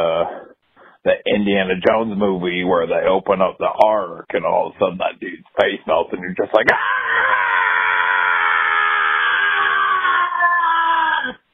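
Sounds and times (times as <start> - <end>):
speech: 1.0 - 7.2
hearty full-throated human scream from the gullet: 6.7 - 11.4.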